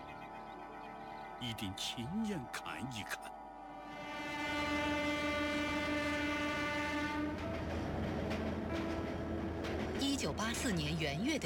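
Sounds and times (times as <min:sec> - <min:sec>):
speech: 0:01.4 - 0:03.4, 0:10.2 - 0:11.4
long sustained train horn blast: 0:03.7 - 0:07.8
rumble and clatter of rolling train carriages pulling into a station: 0:04.4 - 0:11.4.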